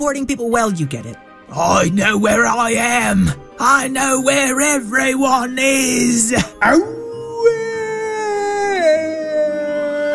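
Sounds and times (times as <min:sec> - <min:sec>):
speech: 0:00.0 - 0:07.6
werewolf howl: 0:05.8 - 0:10.1.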